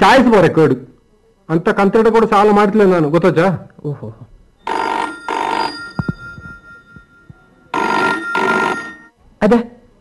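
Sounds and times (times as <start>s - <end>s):
speech: 0.0s - 4.9s, 9.4s - 9.8s
telephone ringing: 4.6s - 9.2s.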